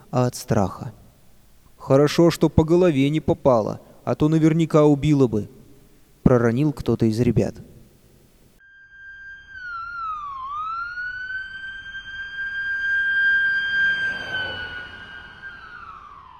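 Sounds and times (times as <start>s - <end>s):
speech: 0.1s - 1.0s, 1.8s - 5.6s, 6.3s - 7.7s
ambulance siren wailing as it takes an injured girl to hospital: 8.8s - 16.3s
low rumbling background: 9.8s - 16.3s.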